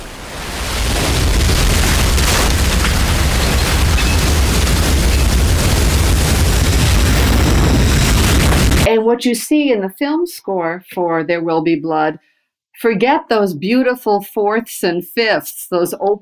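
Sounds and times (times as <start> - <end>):
burning tower of oil rumbling blaze: 0.0 - 8.9
oil rig blast explosion roar: 0.0 - 8.9
speech: 8.9 - 16.1.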